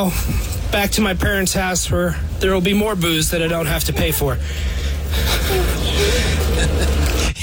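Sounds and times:
low engine-like rumble: 0.0 - 7.4
speech: 0.0 - 7.4
laughter: 3.8 - 7.4
heavy labored breathing: 4.4 - 7.2.

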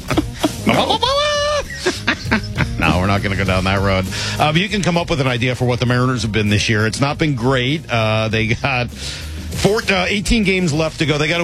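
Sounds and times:
person doing a goat impression with a nasal bleat: 0.0 - 1.8
laughter: 0.0 - 4.5
speech: 0.7 - 2.4, 3.1 - 11.4.

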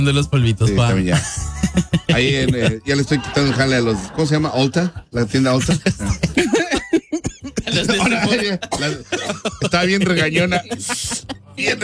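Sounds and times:
speech: 0.0 - 6.6, 7.7 - 11.8
voiced laugh-like sounds and brief vocalizing: 1.0 - 4.8, 5.6 - 11.8
person with a cough coughing: 6.1 - 9.6.

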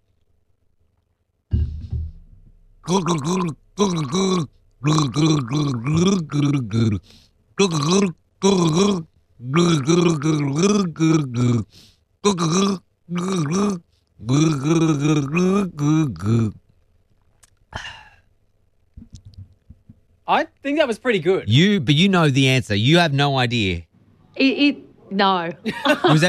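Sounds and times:
person gargling a drink from a bottle while voicing a song's melody: 2.9 - 7.0, 7.6 - 16.6
speech: 2.9 - 16.6, 17.7 - 18.0, 20.3 - 26.2.

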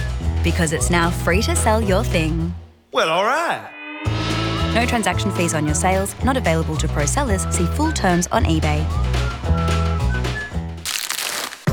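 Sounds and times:
soft music: 0.0 - 2.6, 4.0 - 10.4
speech: 0.4 - 4.2, 4.8 - 9.6
crinkling wrapper of a Lindt Lindor chocolate truffle being unwrapped: 10.8 - 11.7.

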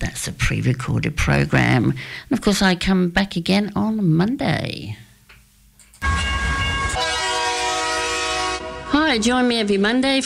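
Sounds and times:
speech: 0.2 - 5.1, 9.1 - 10.2
train horn blaring: 6.0 - 9.5.

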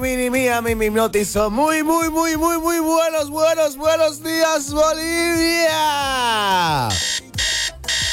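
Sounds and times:
speech: 0.0 - 7.1
alarm clock ringing: 6.9 - 8.1.

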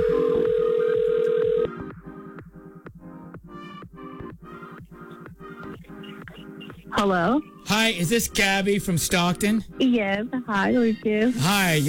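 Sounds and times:
telephone dial tone: 0.0 - 1.7
steady beat: 0.0 - 11.8
speech: 7.0 - 11.8.

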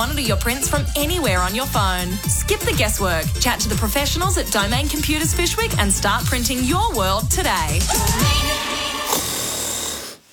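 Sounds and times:
speech: 0.2 - 8.8
loud rough snoring from a sleeper: 8.2 - 10.3.

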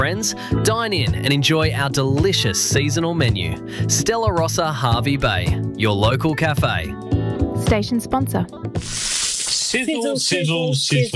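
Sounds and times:
speech: 0.0 - 11.1
sausages frying on a barbecue grill: 8.8 - 9.8.

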